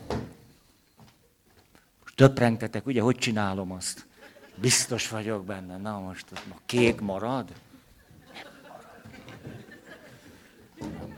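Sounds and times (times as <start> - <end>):
speech: 2.2 - 7.7
laughter: 4.1 - 5.2, 7.6 - 11.1
chairs being shifted and set down: 6.4 - 11.1.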